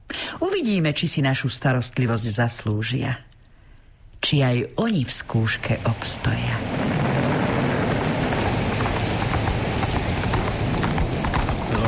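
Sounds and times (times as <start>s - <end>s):
speech: 0.4s - 3.3s, 4.2s - 6.8s
heavy rain pouring during a storm over rocky terrain: 5.1s - 11.8s
sharp patters of rain drops: 5.2s - 11.8s
low roaring wind during a storm: 5.6s - 11.8s.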